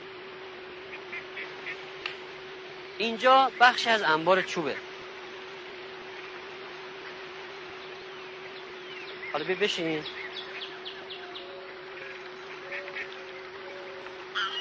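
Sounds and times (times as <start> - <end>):
low outdoor hum: 0.0 - 14.5
ducks quacking on a pond: 0.9 - 1.9, 8.0 - 14.5
speech: 3.0 - 4.9, 9.4 - 10.5.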